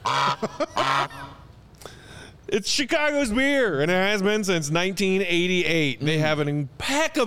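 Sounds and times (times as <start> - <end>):
goose honking: 0.0 - 1.4
speech: 0.4 - 1.3, 2.5 - 7.2.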